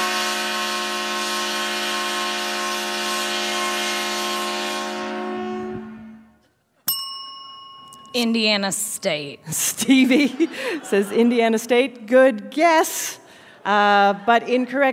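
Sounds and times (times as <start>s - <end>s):
130-decibel train horn blaring at a football touchdown: 0.0s - 6.4s
bright ding: 6.9s - 8.6s
speech: 8.2s - 14.9s
laughter: 9.4s - 11.9s, 13.6s - 14.9s.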